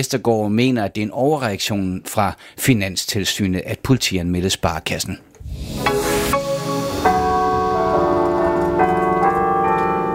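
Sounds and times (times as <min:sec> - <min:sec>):
speech: 0:00.0 - 0:06.4
carillon bells playing from cathedral: 0:06.4 - 0:10.1.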